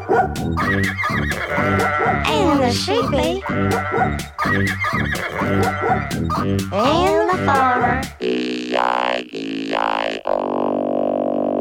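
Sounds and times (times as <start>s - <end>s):
dog barking: 0.0s - 2.2s, 3.4s - 6.5s
speech: 0.2s - 10.6s
laughter: 0.6s - 8.0s.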